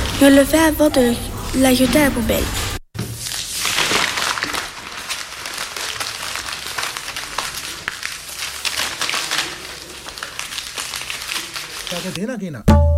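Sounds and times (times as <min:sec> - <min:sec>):
sheet of paper being crumpled: 0:00.0 - 0:00.8, 0:01.5 - 0:12.2
speech: 0:00.2 - 0:02.6, 0:12.0 - 0:12.8.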